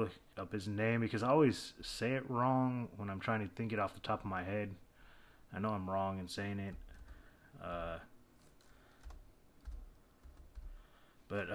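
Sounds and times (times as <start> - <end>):
speech: 0.0 - 4.8, 5.5 - 6.8, 7.6 - 8.1, 11.3 - 11.5
faint typing on a computer keyboard: 6.7 - 10.8.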